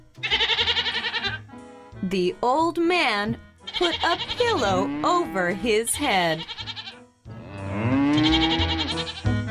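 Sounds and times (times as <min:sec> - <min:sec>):
goat bleating: 0:00.2 - 0:01.4, 0:03.6 - 0:07.0, 0:08.1 - 0:09.4
speech: 0:02.0 - 0:06.6.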